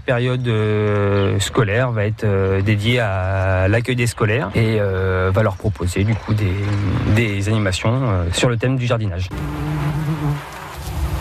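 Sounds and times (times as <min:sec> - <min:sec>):
speech: 0:00.0 - 0:10.4
honeybees buzzing at beehives in front of a bee house: 0:09.3 - 0:11.1.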